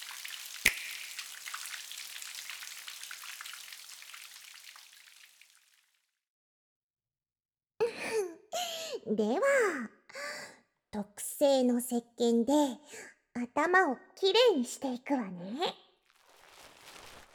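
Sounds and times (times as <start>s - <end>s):
warm water pouring down like a running shower: 0.0s - 6.0s
speech: 9.0s - 10.0s, 11.0s - 15.8s.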